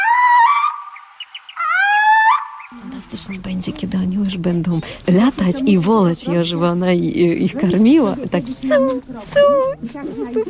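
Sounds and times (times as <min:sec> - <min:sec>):
female tawny owl calling: 0:00.0 - 0:02.8
faint chirping notes: 0:00.0 - 0:03.8
speech: 0:02.7 - 0:10.4.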